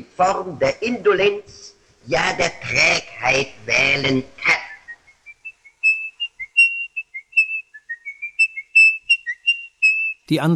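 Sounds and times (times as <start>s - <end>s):
speech: 0.1s - 4.5s, 10.3s - 10.5s
person whistling the opening of a classical piece nervously: 4.9s - 10.3s.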